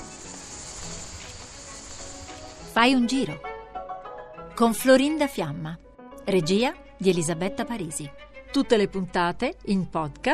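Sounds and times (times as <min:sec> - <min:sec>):
crickets chirping: 0:00.0 - 0:02.7
continuous outdoor hiss: 0:00.0 - 0:03.2
speech: 0:02.8 - 0:03.5, 0:04.6 - 0:10.3.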